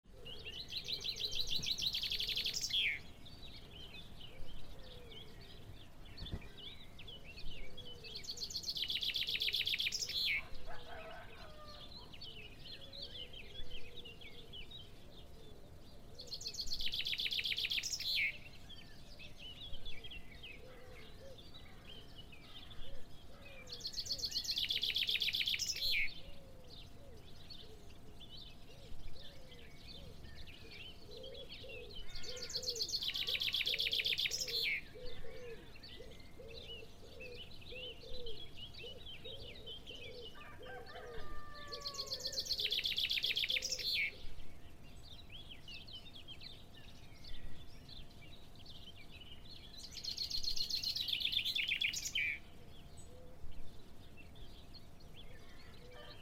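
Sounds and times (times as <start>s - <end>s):
birds singing at dawn in the countryside: 0.0s - 56.2s.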